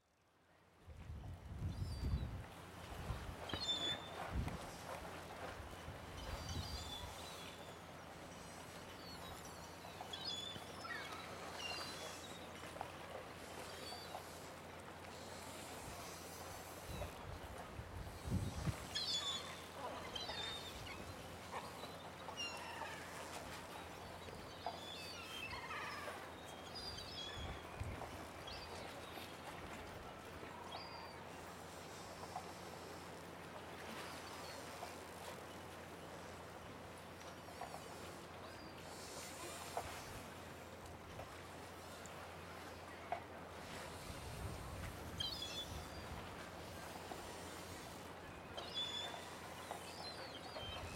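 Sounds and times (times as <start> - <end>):
harbour sounds in Warnemunde: 1.2 - 50.9.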